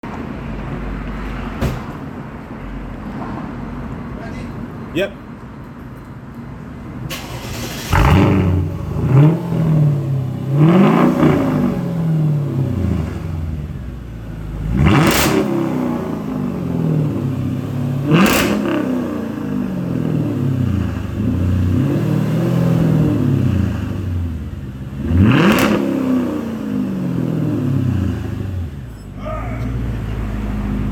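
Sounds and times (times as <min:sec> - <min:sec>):
exhaust with secondary cats resonator and muffler delete: 0:07.4 - 0:30.9.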